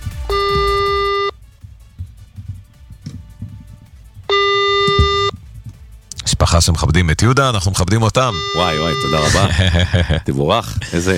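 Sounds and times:
electronic phone ringback tones: 0:00.3 - 0:01.4, 0:04.3 - 0:05.4, 0:08.3 - 0:09.4
speech: 0:06.6 - 0:11.1
laughter: 0:09.1 - 0:10.4.

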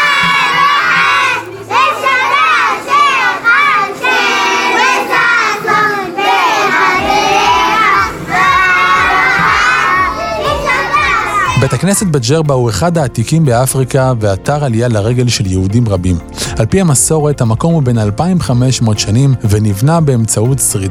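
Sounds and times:
group of young children singing enthusiastically together: 0:00.0 - 0:11.8
speech: 0:11.8 - 0:20.8.

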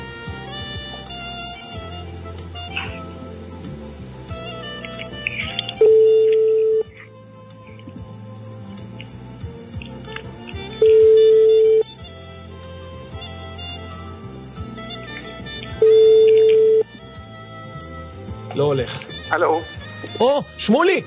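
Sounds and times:
busy musical background: 0:00.0 - 0:21.0
telephone ringback tones on an outgoing call: 0:05.8 - 0:06.9, 0:10.8 - 0:11.9, 0:15.8 - 0:16.9
speech: 0:19.4 - 0:21.0.

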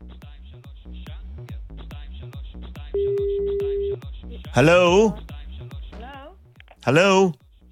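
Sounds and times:
telephone line tones as a call is placed to an embassy: 0:03.0 - 0:04.0
speech: 0:04.6 - 0:05.2, 0:06.8 - 0:07.4.

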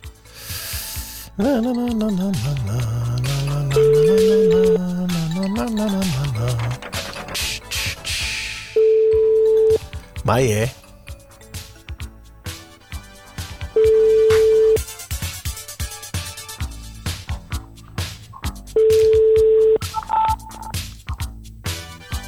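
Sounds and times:
busy music: 0:00.0 - 0:22.2
speech: 0:01.4 - 0:06.9, 0:10.3 - 0:10.8
telephone line ringback tones: 0:01.4 - 0:07.3, 0:08.8 - 0:11.2, 0:13.6 - 0:14.8, 0:18.8 - 0:20.8.

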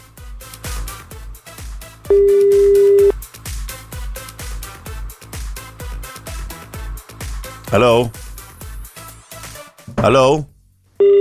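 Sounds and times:
loud rhythmic Hasidic pop music: 0:00.6 - 0:09.7
telephone busy tone after a call-in line disconnects: 0:02.1 - 0:03.1
speech: 0:07.7 - 0:08.2, 0:10.0 - 0:10.5.

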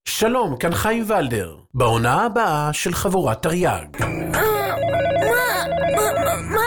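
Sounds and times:
speech: 0:00.2 - 0:04.5
telephone ringing with a warbling electronic trill: 0:04.0 - 0:06.6.

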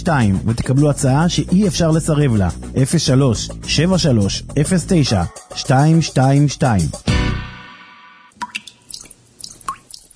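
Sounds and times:
speech: 0:00.0 - 0:07.1
water dripping from a tap: 0:08.4 - 0:10.1.

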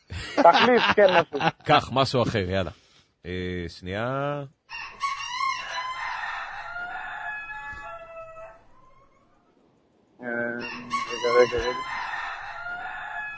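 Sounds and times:
laughter: 0:00.1 - 0:01.8
speech: 0:00.4 - 0:05.0, 0:11.4 - 0:12.0
agitated rooster crowing: 0:04.7 - 0:09.5, 0:10.3 - 0:13.3.

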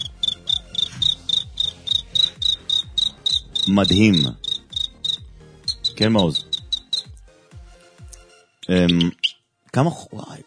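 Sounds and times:
voice imitating cricket chirps: 0:00.0 - 0:07.0
speech: 0:03.7 - 0:04.4, 0:06.0 - 0:06.5, 0:08.7 - 0:09.2, 0:09.8 - 0:10.4.

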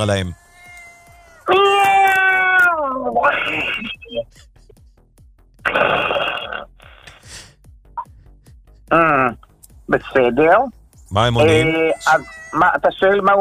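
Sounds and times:
speech: 0:00.0 - 0:00.4, 0:03.2 - 0:04.5, 0:05.7 - 0:06.4, 0:08.9 - 0:13.4
cat meowing: 0:00.3 - 0:04.0, 0:11.4 - 0:13.4
cat making rough breathy sounds: 0:06.8 - 0:08.6.

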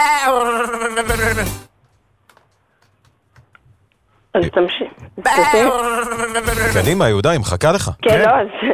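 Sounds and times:
speech: 0:00.0 - 0:01.7, 0:04.4 - 0:08.7
sheep bleating: 0:05.2 - 0:06.8.

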